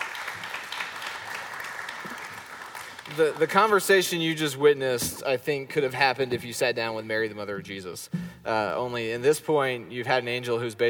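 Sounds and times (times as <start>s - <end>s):
audience applause: 0.0s - 4.0s
speech: 3.1s - 10.8s.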